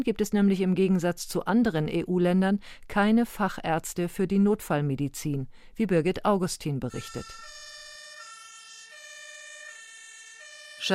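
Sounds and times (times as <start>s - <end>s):
speech: 0.0s - 7.6s, 10.8s - 10.9s
two-tone ambulance siren arriving at a hospital emergency department: 6.9s - 10.9s.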